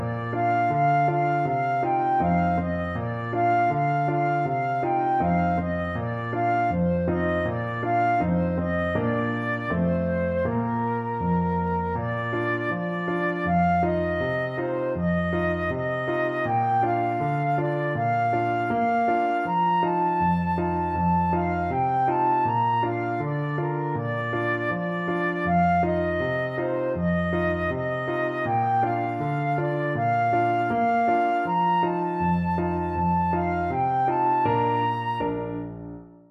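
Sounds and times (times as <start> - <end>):
voice flute: 0.2 - 35.8.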